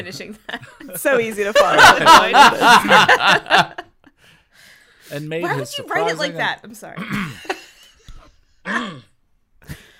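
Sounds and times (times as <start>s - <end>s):
speech: 0.0s - 3.8s, 5.1s - 7.6s
laughter: 0.9s - 4.0s
person coughing: 7.0s - 7.4s, 8.6s - 9.1s.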